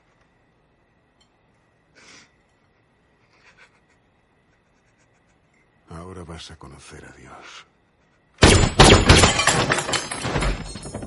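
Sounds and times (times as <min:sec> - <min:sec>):
speech: 0:06.1 - 0:07.7
gunshots in a crime thriller scene: 0:08.4 - 0:09.6.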